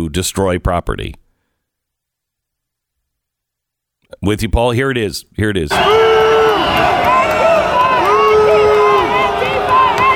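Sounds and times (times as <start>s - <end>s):
speech: 0.0s - 1.2s, 4.2s - 7.4s
loud dense crowd shouting and yelling at a riot: 5.7s - 10.1s
man screaming at a riot: 5.7s - 10.1s.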